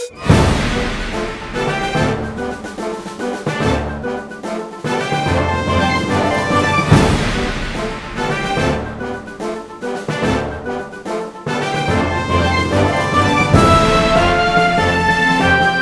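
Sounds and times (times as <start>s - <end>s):
musical accompaniment: 0.1s - 15.8s.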